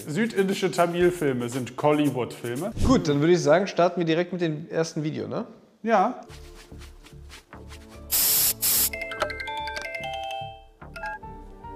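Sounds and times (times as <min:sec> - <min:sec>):
rhythmic music with bright ringing tones: 0:00.0 - 0:02.8, 0:06.2 - 0:11.7
speech: 0:00.0 - 0:06.9
aerosol spray hiss: 0:08.1 - 0:09.0.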